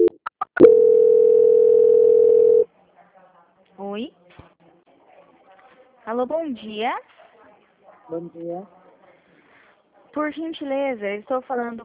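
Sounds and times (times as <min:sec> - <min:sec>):
steady mid-pitched telephone tone during a call transfer: 0:00.0 - 0:02.7
speech: 0:06.1 - 0:07.2, 0:08.1 - 0:08.8, 0:10.1 - 0:11.8.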